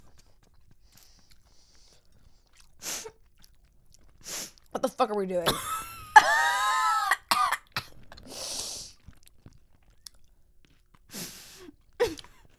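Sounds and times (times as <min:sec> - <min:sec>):
wet mouth and chewing noises: 0:00.0 - 0:04.8, 0:07.9 - 0:11.1
speech: 0:05.0 - 0:05.8
person coughing after tasting a candy: 0:05.5 - 0:08.0.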